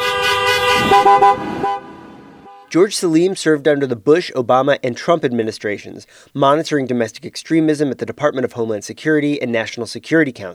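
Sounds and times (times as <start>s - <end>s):
car horns honking outside a state Capitol during a protest: 0.0s - 2.8s
speech: 2.7s - 10.5s.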